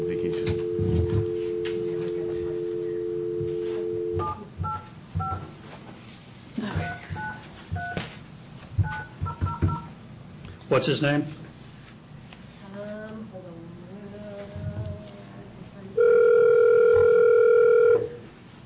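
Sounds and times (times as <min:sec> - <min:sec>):
steady telephone dial tone: 0:00.0 - 0:05.4, 0:16.0 - 0:18.2
telephone keypad dialing tones: 0:00.0 - 0:05.4, 0:08.8 - 0:09.9, 0:16.0 - 0:18.1
low room noise: 0:00.0 - 0:18.6
speech: 0:10.8 - 0:11.4.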